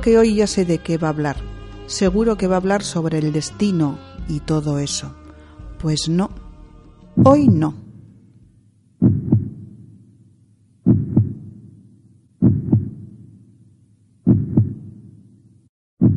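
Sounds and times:
speech: 0.0s - 5.2s, 5.8s - 6.4s, 7.2s - 7.8s
human heart beating: 7.2s - 7.9s, 9.0s - 9.9s, 10.8s - 11.8s, 12.4s - 13.2s, 14.3s - 15.0s.

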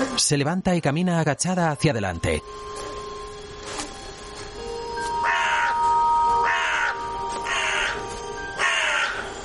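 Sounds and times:
speech: 0.2s - 2.8s
crows cawing in a forest: 5.1s - 9.4s.

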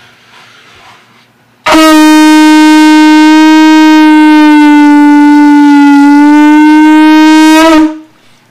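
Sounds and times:
atecocoli conch shell trumpet being blown: 1.6s - 8.2s.

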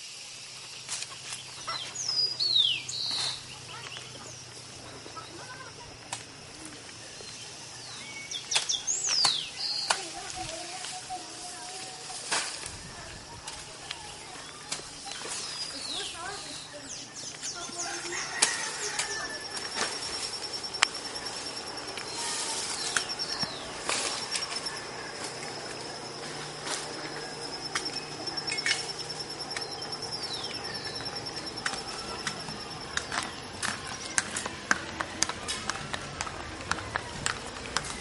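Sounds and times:
thin high insect-like whine: 0.0s - 34.5s
low steady hum of traffic or machinery: 0.0s - 37.9s
bird chirps and calls: 1.4s - 5.6s, 7.3s - 10.1s, 14.0s - 34.2s.

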